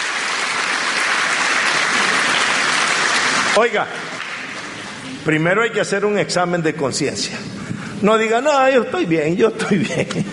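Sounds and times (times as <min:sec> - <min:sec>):
sizable crowd applauding: 0:00.0 - 0:05.2
speech: 0:03.6 - 0:04.1, 0:05.2 - 0:10.3
laughter: 0:09.6 - 0:10.3.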